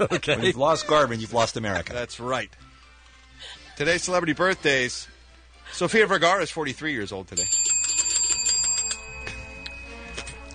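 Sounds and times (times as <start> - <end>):
laughter: 0.0 - 1.9
speech: 0.0 - 2.7, 3.4 - 5.1, 5.7 - 7.6
two bells ringing together: 7.4 - 10.5.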